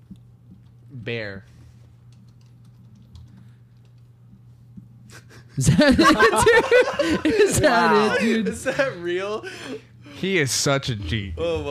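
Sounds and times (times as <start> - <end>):
steady low electrical hum: 0.0 - 11.6
speech: 1.0 - 1.6, 5.6 - 11.6
typing on a computer keyboard: 2.1 - 4.1
laughter: 5.1 - 10.2.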